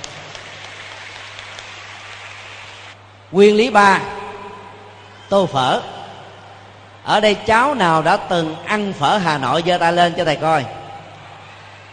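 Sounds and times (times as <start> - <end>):
group of children applauding: 0.0 - 3.0, 11.2 - 11.9
speech: 3.3 - 4.1, 5.3 - 5.9, 7.1 - 10.8.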